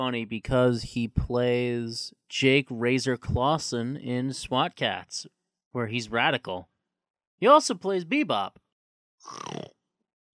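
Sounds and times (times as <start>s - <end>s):
speech: 0.0s - 6.7s, 7.4s - 8.6s, 9.2s - 9.6s
person snorting imitating a warthog: 9.2s - 9.7s.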